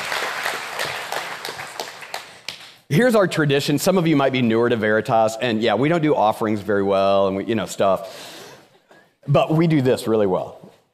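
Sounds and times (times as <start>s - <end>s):
crowd applauding: 0.0s - 2.8s
sharper closer claps at a regular beat: 0.0s - 2.9s
speech: 2.9s - 8.4s, 9.3s - 10.7s.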